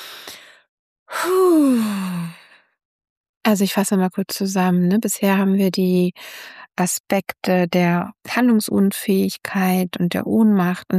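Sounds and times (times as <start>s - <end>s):
short airy intake of breath: 0.0s - 2.2s
speech: 3.5s - 10.9s.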